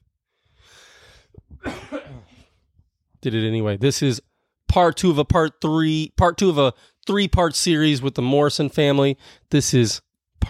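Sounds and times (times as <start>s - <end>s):
sharp intake of breath: 0.6s - 1.3s
harsh throaty coughs from a person who is unwell: 1.5s - 2.6s
speech: 3.2s - 10.4s.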